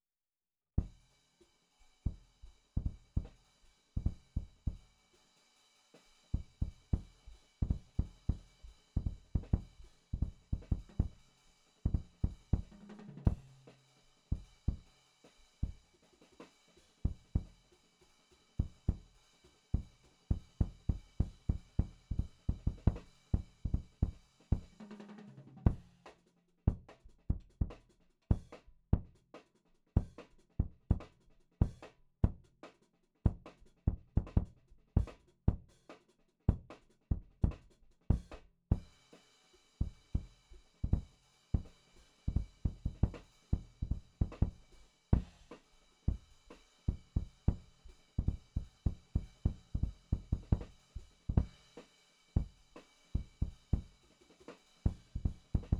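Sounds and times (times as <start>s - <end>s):
punchy kick drum in drum and bass jazz jungle beats: 0.8s - 1.0s, 2.8s - 3.4s, 4.0s - 4.9s, 6.4s - 11.2s, 11.9s - 13.6s, 17.1s - 17.5s, 18.6s - 19.1s, 19.8s - 24.7s, 25.7s - 26.0s, 26.7s - 29.1s, 30.0s - 32.5s, 33.3s - 35.7s, 36.5s - 39.0s, 39.8s - 41.7s, 42.3s - 46.3s, 46.9s - 51.7s, 53.2s - 53.9s, 54.9s - 55.7s
drum and bass jazz jungle beat: 2.0s - 55.7s.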